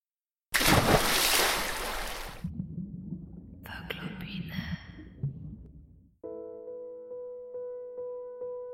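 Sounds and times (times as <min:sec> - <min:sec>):
flowing river water: 0:00.6 - 0:06.0.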